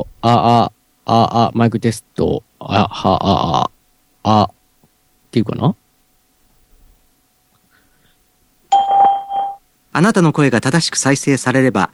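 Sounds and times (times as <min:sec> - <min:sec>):
speech: 0:00.0 - 0:04.6, 0:05.3 - 0:05.8, 0:10.0 - 0:11.9
electronic two-note beep prompt from a voice call test service: 0:08.7 - 0:09.6.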